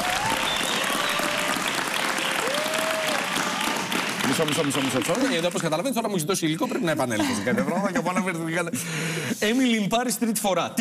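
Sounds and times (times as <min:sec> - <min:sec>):
crowd applauding: 0:00.0 - 0:06.0
faint whistles: 0:00.3 - 0:01.2
speech: 0:04.4 - 0:10.7
laughter: 0:06.6 - 0:09.4.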